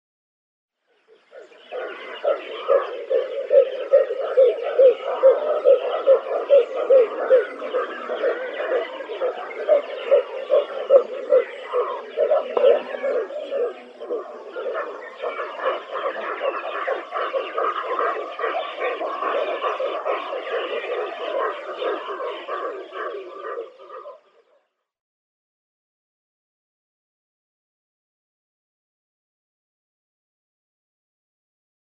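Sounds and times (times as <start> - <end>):
Pink-backed Pelican calling: 1.4 - 24.3.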